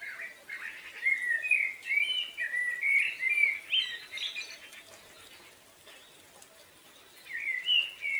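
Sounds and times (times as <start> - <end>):
common blackbird singing fluting whistled phrases: 0.0 - 4.6, 7.2 - 8.1.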